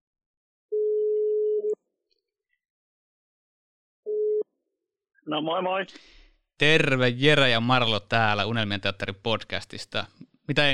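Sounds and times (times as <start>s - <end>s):
telephone ringback tone while a call is being placed: 0.7s - 1.8s
speech: 5.3s - 10.7s.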